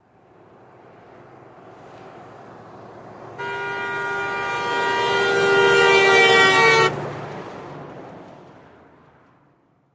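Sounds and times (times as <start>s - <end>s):
car horn passing by with Doppler shift: 3.3s - 7.0s.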